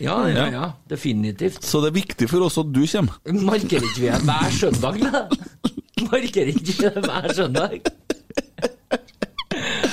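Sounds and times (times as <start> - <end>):
speech: 0.0 - 8.0
person coughing into a new microphone: 4.0 - 8.8
laughter: 6.3 - 9.9.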